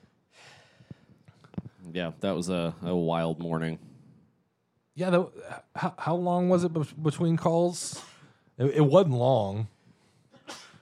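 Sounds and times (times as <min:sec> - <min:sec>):
short intake of breath: 0:00.0 - 0:01.4
speech: 0:02.0 - 0:03.9, 0:05.0 - 0:09.7
single sneeze: 0:10.4 - 0:10.7.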